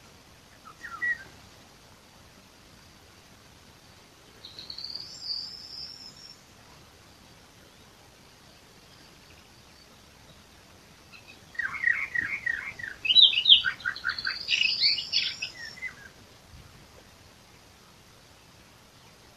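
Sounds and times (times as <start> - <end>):
Eastern Orphean Warbler song with chattering and warbled notes: 0.5 - 1.3, 4.4 - 6.5, 11.1 - 16.2.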